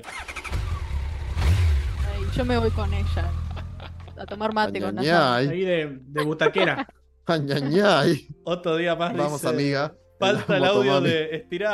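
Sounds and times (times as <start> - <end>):
motorcycle engine revving: 0.0 - 4.2
speech: 2.3 - 3.4, 4.2 - 11.7
laughter: 3.1 - 5.6, 6.2 - 8.4, 10.2 - 11.5.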